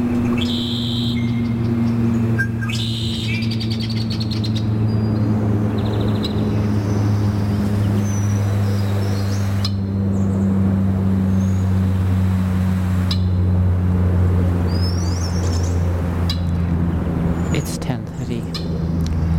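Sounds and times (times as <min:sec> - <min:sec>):
wetland birds trilling, chattering and calling: 0:00.0 - 0:12.0, 0:14.7 - 0:19.3
steady low droning hum: 0:00.0 - 0:19.3
sharp wetland bird whistles: 0:00.3 - 0:01.4, 0:02.4 - 0:04.4.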